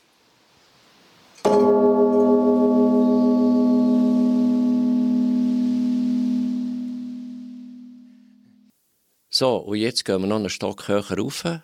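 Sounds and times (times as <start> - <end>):
deep strike of a large church bell: 1.5 - 8.7
speech: 9.4 - 11.6.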